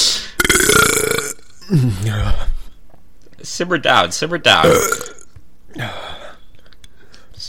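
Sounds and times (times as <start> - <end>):
person burping: 0.4 - 2.4, 4.6 - 6.2
speech: 1.7 - 2.5, 3.4 - 5.2, 5.8 - 6.1.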